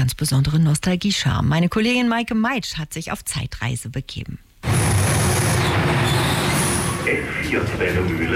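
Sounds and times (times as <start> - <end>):
speech: 0.1 - 4.5, 7.1 - 8.3
historic commuter train rumbling and rattling pulling into a station: 4.6 - 8.3.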